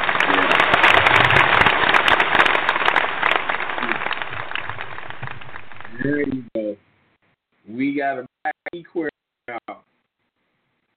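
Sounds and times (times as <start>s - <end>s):
loud crowd cheering and clapping sound effect: 0.0s - 6.5s
speech: 8.0s - 9.1s.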